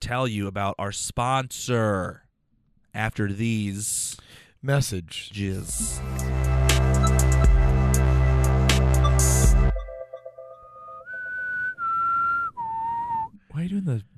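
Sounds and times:
speech: 0.1s - 2.2s, 2.9s - 6.5s, 13.6s - 14.1s
loud burst of bright dense music: 5.6s - 11.1s
person whistling mimicking a boat whistle: 10.7s - 13.6s.

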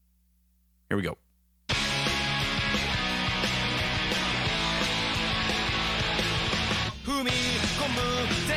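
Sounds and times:
speech: 0.9s - 1.2s, 7.1s - 8.5s
Japanese punk rock song with full band and driving guitars: 1.7s - 8.5s.

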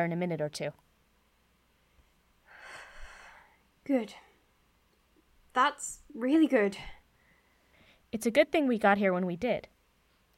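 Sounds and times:
speech: 0.0s - 0.9s, 3.9s - 4.3s, 5.6s - 7.0s, 8.1s - 9.7s
airy breath: 2.5s - 3.6s, 7.1s - 8.1s.

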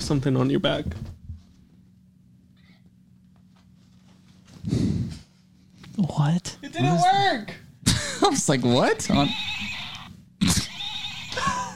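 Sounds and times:
speech: 0.1s - 1.2s, 6.0s - 7.6s, 8.2s - 9.6s
stick horse toy playing a recorded neigh: 9.2s - 11.7s.

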